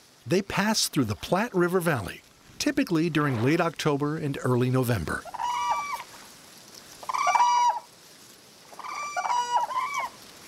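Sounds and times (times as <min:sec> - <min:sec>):
speech: 0:00.3 - 0:05.4
Whooping Crane bugling calls in the Platte River Valley Nebraska: 0:05.2 - 0:06.2, 0:07.0 - 0:07.9, 0:08.7 - 0:10.2.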